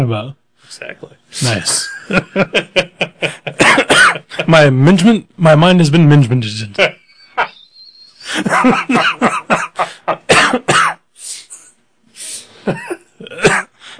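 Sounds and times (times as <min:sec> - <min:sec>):
speech: 0:00.0 - 0:03.6, 0:04.4 - 0:07.0, 0:08.3 - 0:10.9
laughter: 0:01.7 - 0:04.7, 0:06.7 - 0:10.3
person coughing: 0:03.6 - 0:04.4, 0:08.5 - 0:11.0, 0:12.7 - 0:13.7.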